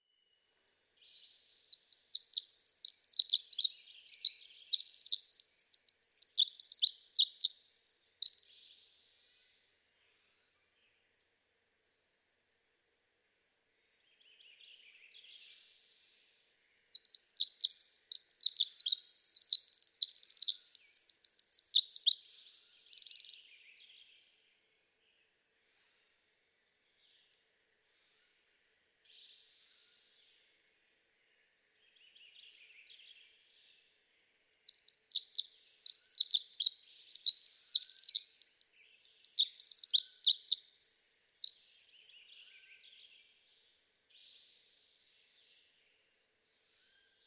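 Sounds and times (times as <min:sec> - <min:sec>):
Pacific wren singing: 0:01.6 - 0:08.7, 0:16.8 - 0:23.4, 0:34.5 - 0:42.1.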